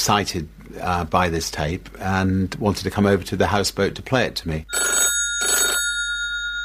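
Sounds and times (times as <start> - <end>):
speech: 0.0 - 5.0
telephone ringing with electronic trill: 4.7 - 6.6.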